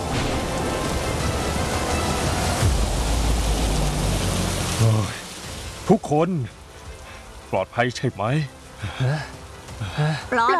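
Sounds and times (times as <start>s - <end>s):
low rumbling bursts: 0.0s - 5.9s
heavy rain pouring from an arriving storm: 0.0s - 10.5s
speech: 5.9s - 6.6s, 7.5s - 10.5s.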